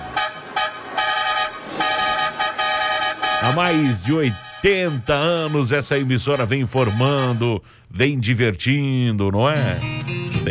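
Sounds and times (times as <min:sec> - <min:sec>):
car horn honking: 0:00.0 - 0:07.8
speech: 0:03.4 - 0:10.4.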